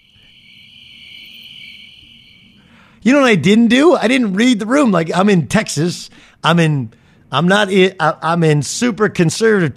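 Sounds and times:
cricket chirping: 0.0s - 2.9s
speech: 3.0s - 9.7s.

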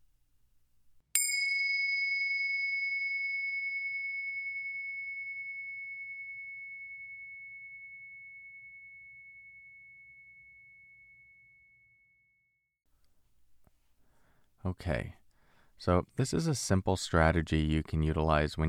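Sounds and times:
meditation bell struck and ringing: 1.2s - 12.4s
speech: 14.6s - 15.2s, 15.8s - 18.6s.

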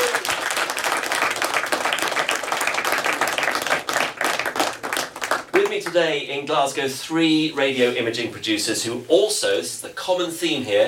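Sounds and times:
crowd applauding: 0.0s - 6.0s
speech: 5.8s - 10.8s.

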